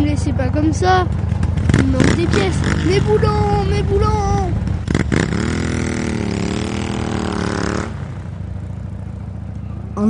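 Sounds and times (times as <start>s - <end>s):
motorcycle engine revving: 0.0s - 10.0s
speech: 0.6s - 5.3s.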